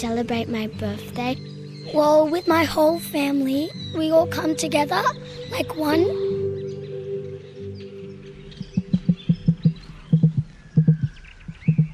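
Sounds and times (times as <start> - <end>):
speech: 0.0 - 6.2
emu drumming call in the bush in inland New South Wales: 8.6 - 11.9.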